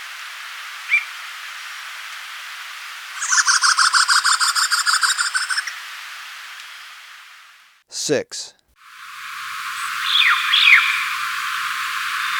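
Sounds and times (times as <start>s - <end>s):
Northern mountain cacique rapid buzzy chatter in Ecuador: 3.2s - 5.7s, 8.9s - 12.3s
speech: 8.0s - 8.6s
Northern mountain cacique sharp note in Ecuador: 9.0s - 12.3s.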